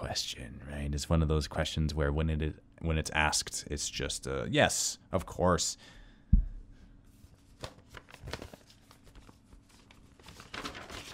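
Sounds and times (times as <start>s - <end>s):
speech: 0.1s - 6.0s
paper rustling: 7.1s - 11.1s.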